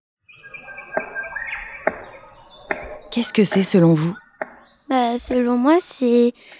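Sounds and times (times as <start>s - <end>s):
faint bird calls and chirps: 0.3s - 5.6s
black cockatoo drumming a stick on wood: 1.8s - 3.8s, 4.4s - 4.6s
speech: 3.2s - 4.2s, 4.9s - 6.5s.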